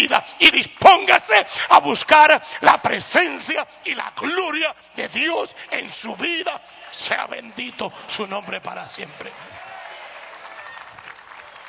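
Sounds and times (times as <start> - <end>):
speech: 0.0 - 9.7
weak thin applause from a church congregation during a sermon: 9.1 - 11.6.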